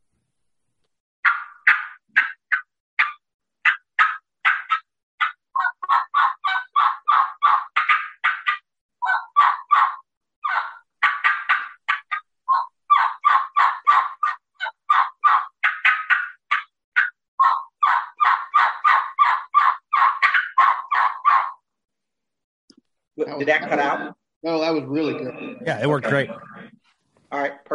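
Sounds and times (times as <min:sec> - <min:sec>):
hunter working a turkey call: 0:01.2 - 0:21.6
speech: 0:23.3 - 0:26.5.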